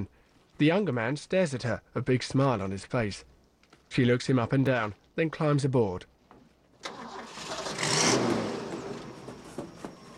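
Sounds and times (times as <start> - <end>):
speech: 0.0 - 3.3, 3.9 - 6.1
brown truck engine starting in a parking lot: 6.8 - 10.1.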